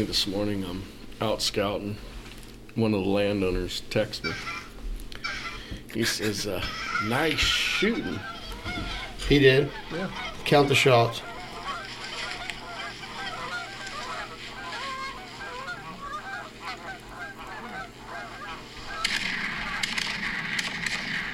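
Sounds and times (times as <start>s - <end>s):
speech: 0.0s - 2.1s, 2.8s - 4.6s, 6.0s - 11.3s
flock of geese honking: 4.2s - 21.3s
broadband rustling noise: 11.2s - 21.3s.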